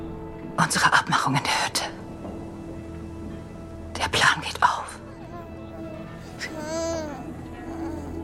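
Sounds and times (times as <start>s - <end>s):
speech: 0.6s - 2.0s
baby babbling in soft coos and squeals: 5.2s - 8.2s.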